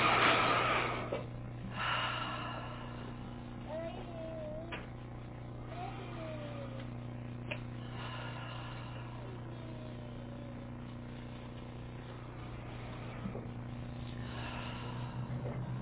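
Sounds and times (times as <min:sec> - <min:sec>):
deep audible breathing through the mouth in a relaxation exercise: 0:00.0 - 0:03.6, 0:07.6 - 0:09.6, 0:12.3 - 0:15.8
low steady hum: 0:00.0 - 0:15.8.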